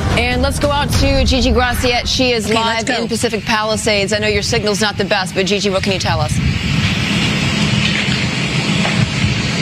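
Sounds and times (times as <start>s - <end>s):
deep rumbling undertone of a wildfire ember storm: 0.0s - 6.8s
wildfire ember storm wind-driven roar: 0.0s - 9.6s
speech: 0.5s - 7.0s.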